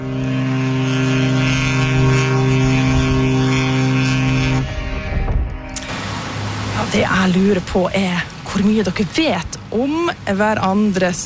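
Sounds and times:
large coastal passenger ship giving a deep steady tonal drone: 0.0 - 8.8
speech: 7.1 - 11.2.

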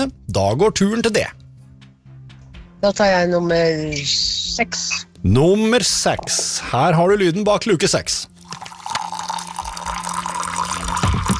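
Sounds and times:
speech: 0.0 - 1.4, 2.8 - 8.3
tea pouring into a cup: 8.3 - 11.3.

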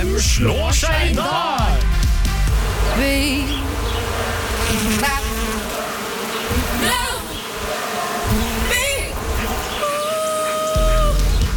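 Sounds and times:
speech: 0.2 - 1.6
dense swarm of bees buzzing: 2.5 - 11.5.

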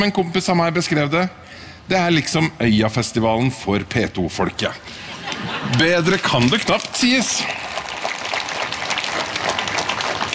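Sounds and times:
speech: 0.0 - 7.6
laughter: 4.8 - 6.7
crowd applauding: 5.3 - 10.3.

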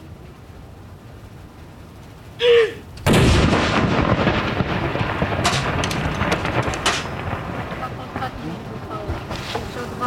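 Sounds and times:
cannon salute shot from a fortress: 3.0 - 8.4.

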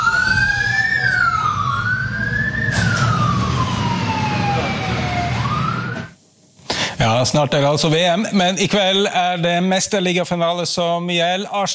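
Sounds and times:
emergency vehicle siren wailing: 0.0 - 6.2
traffic noise: 0.0 - 6.2
rumbling engine: 0.1 - 6.1
speech: 7.2 - 11.7.

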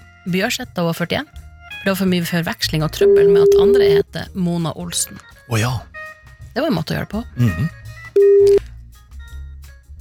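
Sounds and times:
speech: 0.2 - 5.9, 6.6 - 8.6
loud steady telephone line tone: 3.0 - 4.0, 8.2 - 8.6.

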